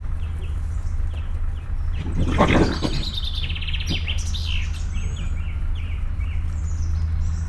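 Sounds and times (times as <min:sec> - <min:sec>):
wolverine growling: 0:00.0 - 0:06.4.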